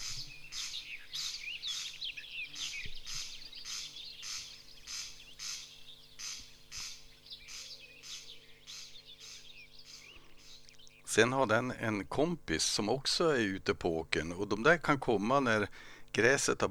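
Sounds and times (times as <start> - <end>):
corncrake dry rasping zipper-like call: 0.0 - 11.1
speech: 11.2 - 16.6.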